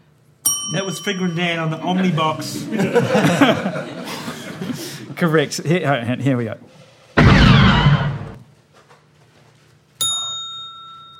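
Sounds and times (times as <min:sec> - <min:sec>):
speech: 0:00.7 - 0:04.3, 0:05.2 - 0:06.8
laughter: 0:01.6 - 0:05.6
sci-fi blaster shot with zapping burst and falling whistling tones: 0:07.2 - 0:08.4
struck wire metallic twang: 0:07.2 - 0:08.4.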